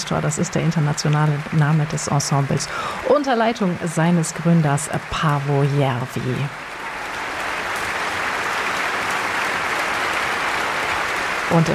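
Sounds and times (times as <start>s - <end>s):
large concert audience applause in a concert hall: 0.0s - 11.7s
speech: 0.1s - 6.7s, 11.5s - 11.7s.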